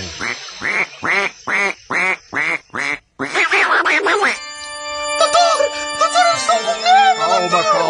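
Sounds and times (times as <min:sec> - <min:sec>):
duck quacking: 0:00.2 - 0:04.4
bright ringing electronic tones: 0:04.1 - 0:07.8.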